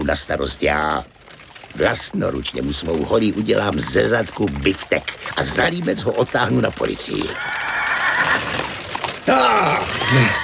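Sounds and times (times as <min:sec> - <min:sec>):
speech: 0:00.0 - 0:07.6, 0:09.3 - 0:10.4
spooked horse whinnying shrilly: 0:07.3 - 0:10.4.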